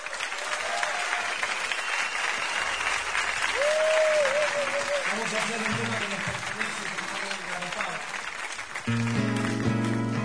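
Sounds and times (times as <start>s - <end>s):
audience applause at a live bar show: 0.0s - 10.2s
speech: 5.2s - 7.0s.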